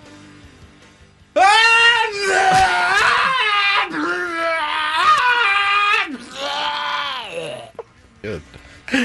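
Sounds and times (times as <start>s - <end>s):
person imitating screaming while vomiting: 1.4s - 7.9s.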